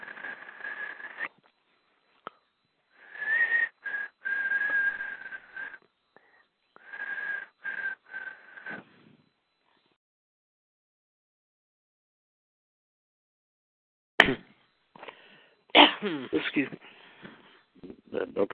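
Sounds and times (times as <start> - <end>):
breathy intakes between whistled phrases: 0.0 - 1.3, 2.0 - 9.6, 15.0 - 17.8
person whistling a tune: 3.1 - 5.8, 6.8 - 8.8
speech: 16.0 - 17.0, 18.2 - 18.5.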